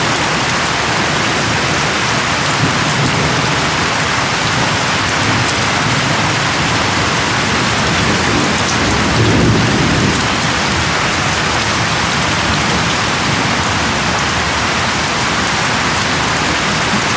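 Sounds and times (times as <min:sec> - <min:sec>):
torrential rain on a metal farm roof at night: 0:00.0 - 0:17.1
thunder: 0:02.6 - 0:14.6.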